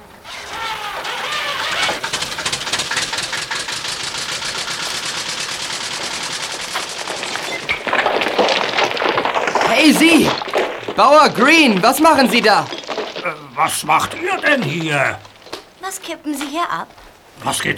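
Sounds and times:
tractor engine running on a deserted beach: 0.0 - 15.9
speech: 11.0 - 15.3, 16.0 - 17.7.

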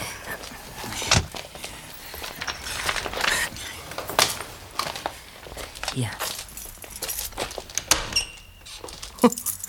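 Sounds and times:
door of a dark apartment being eased open quietly: 0.2 - 9.2.

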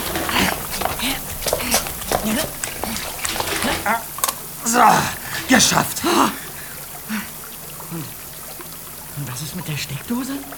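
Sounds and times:
rising water flowing and gurgling: 0.0 - 10.5
speech: 2.2 - 2.6, 3.9 - 6.4, 7.9 - 8.2, 9.3 - 10.5.

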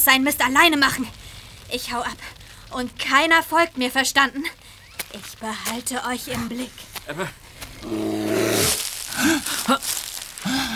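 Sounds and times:
speech: 0.0 - 10.6
bear growling and snarling: 6.0 - 9.8.

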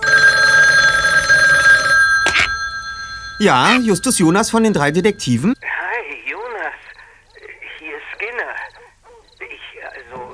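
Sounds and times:
telephone bell ringing: 0.0 - 5.6
speech: 3.4 - 5.6.

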